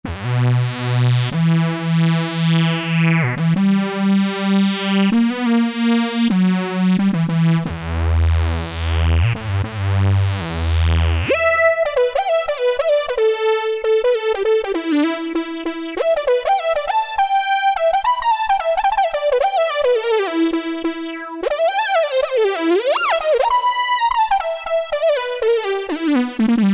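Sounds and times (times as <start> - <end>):
Yamaha TG77 factory synthesizer preset: 0.1 - 26.7.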